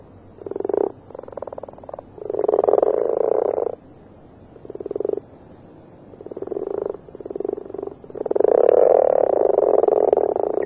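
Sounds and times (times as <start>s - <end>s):
marsh frog giving rattling pulsed croaks in the UK: 0.4s - 3.8s, 4.6s - 5.3s, 6.2s - 10.6s.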